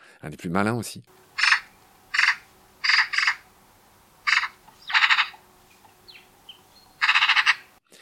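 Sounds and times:
speech: 0:00.2 - 0:01.2
faint steady hum: 0:01.1 - 0:07.8
Eurasian magpie harsh rattling chatter: 0:01.2 - 0:03.5, 0:04.2 - 0:07.7.

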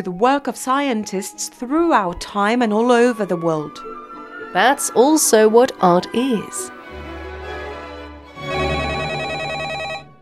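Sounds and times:
speech: 0:00.0 - 0:06.8
telephone ringing in a museum: 0:08.4 - 0:10.1.

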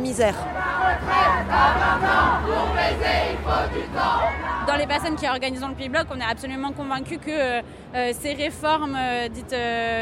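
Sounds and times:
low street rumble: 0:00.0 - 0:10.0
speech: 0:00.1 - 0:10.0
large crowd chanting a slogan at a protest march in Paris: 0:00.4 - 0:05.3.

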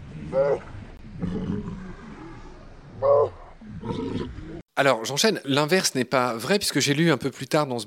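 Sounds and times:
walrus giving bellowing calls: 0:00.0 - 0:04.6
walrus lower grumbling and rumbling sounds: 0:00.0 - 0:04.6
speech: 0:00.3 - 0:01.9, 0:03.0 - 0:07.8.

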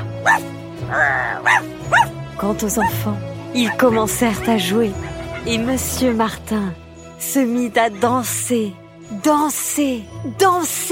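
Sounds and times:
dog barking: 0:00.2 - 0:00.5, 0:01.4 - 0:02.1
speech: 0:00.2 - 0:10.9
dog whining yelp: 0:01.0 - 0:02.1.

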